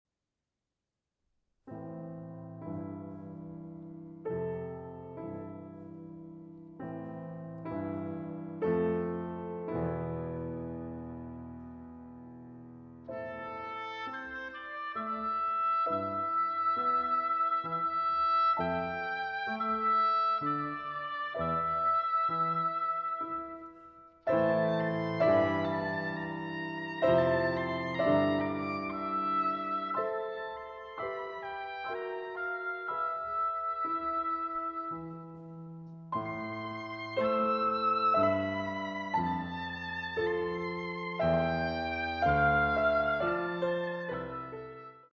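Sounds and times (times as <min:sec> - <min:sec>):
piano playing a nocturne: 0:01.6 - 0:45.1
oboe playing a nocturne: 0:13.1 - 0:45.1.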